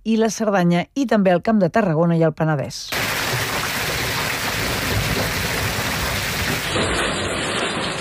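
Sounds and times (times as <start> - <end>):
speech: 0.0 - 3.4
heavy rain during a thunderstorm: 2.9 - 8.0.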